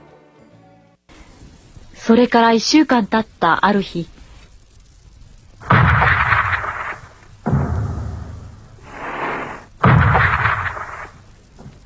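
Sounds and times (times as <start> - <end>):
speech: 2.0 - 4.1
rolling rumble of naval gunfire: 4.6 - 11.8
naval gunfire bombarding the shore: 5.6 - 11.3.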